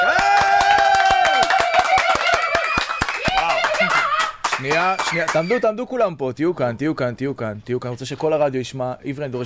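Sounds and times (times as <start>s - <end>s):
small group clapping in quick uneven bursts: 0.0s - 5.6s
voices whooping: 0.0s - 5.6s
speech: 4.6s - 9.4s.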